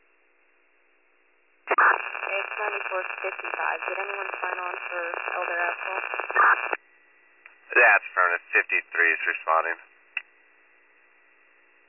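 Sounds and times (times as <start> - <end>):
static on a county dispatch two-way radio transmission: 1.7 - 6.8, 7.7 - 9.8
speech: 3.0 - 6.8, 7.8 - 9.9.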